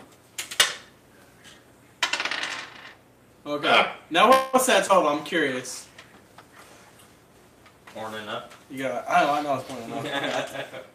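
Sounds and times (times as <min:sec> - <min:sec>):
dice rolling onto a hard table: 0:02.0 - 0:03.0
speech: 0:03.4 - 0:05.9, 0:08.0 - 0:10.9.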